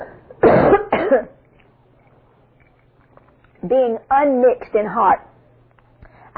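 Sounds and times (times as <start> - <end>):
harsh coughs: 0.0 - 1.4
speech: 1.1 - 1.4, 3.6 - 5.3.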